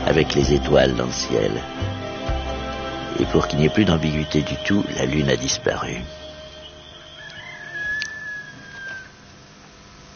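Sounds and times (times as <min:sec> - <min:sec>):
steady hiss: 0:00.0 - 0:10.1
speech: 0:00.1 - 0:02.0, 0:03.1 - 0:06.2
rooster crowing: 0:06.2 - 0:09.4.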